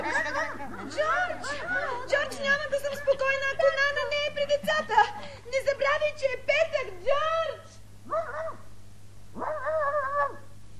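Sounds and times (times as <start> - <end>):
laughter: 0.0 - 5.7
faint steady hum: 0.0 - 10.7
dog barking: 8.1 - 8.7, 9.4 - 10.5.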